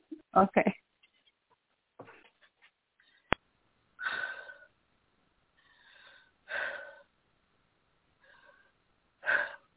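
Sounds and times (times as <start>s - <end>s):
person breathing heavily: 4.0s - 4.7s, 5.6s - 7.1s, 8.2s - 9.7s.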